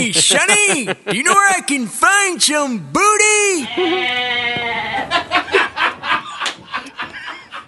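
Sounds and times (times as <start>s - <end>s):
laughter: 0.0s - 1.7s, 4.6s - 7.6s
speech: 0.0s - 5.6s
goat bleating: 3.6s - 5.2s.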